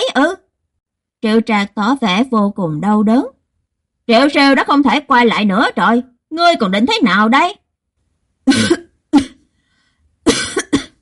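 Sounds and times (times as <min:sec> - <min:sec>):
speech: 0:01.2 - 0:03.4, 0:04.1 - 0:07.6, 0:08.5 - 0:09.3
harsh wet coughing of someone coughing up blood while lying on the ground convulsing: 0:08.5 - 0:09.5, 0:10.2 - 0:11.0.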